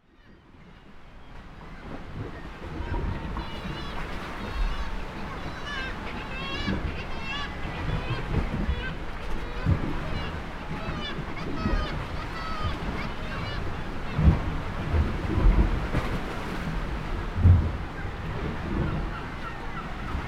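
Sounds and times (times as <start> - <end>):
ocean waves at kittiwake cliffs: 0.0 - 20.2.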